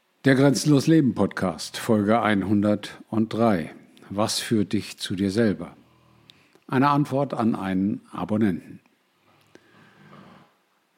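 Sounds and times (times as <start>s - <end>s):
speech: 0.2s - 5.8s, 6.7s - 8.8s
dog snoring: 9.8s - 10.6s.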